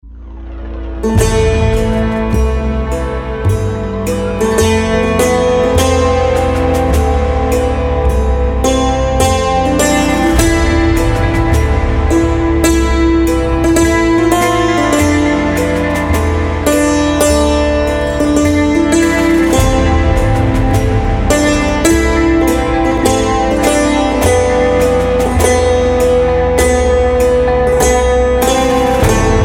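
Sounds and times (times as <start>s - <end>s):
dulcimer: 0.0s - 29.4s.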